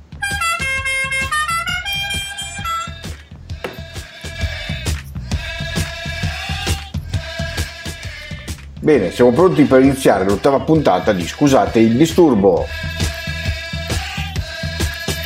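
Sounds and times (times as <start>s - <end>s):
steady thumping beat: 0.0s - 15.2s
brassy car horn honking stepped melodic tones: 0.1s - 3.0s
speech: 8.9s - 13.0s.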